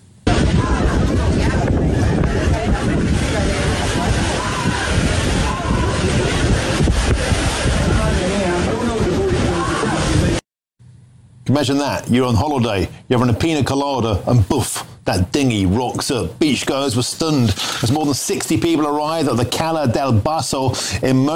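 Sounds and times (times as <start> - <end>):
heavy wind buffeting the microphone: 0.2 - 10.4
indistinct voices shouting: 0.3 - 8.0, 8.6 - 10.4
steady crashing surf: 0.3 - 10.4
speech: 11.6 - 21.3.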